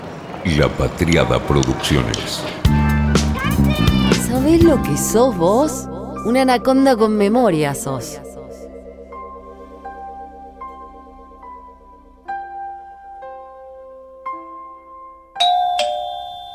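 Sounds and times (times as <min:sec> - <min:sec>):
speech: 0:00.4 - 0:02.8, 0:03.8 - 0:08.2
melodic doorbell chime: 0:15.4 - 0:16.5.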